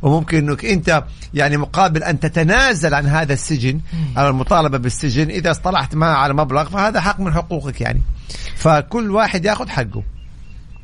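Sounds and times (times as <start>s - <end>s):
speech: 0.0s - 10.2s
steady low rumble of noise: 0.0s - 10.8s
small bird chirping in a garden: 10.0s - 10.8s.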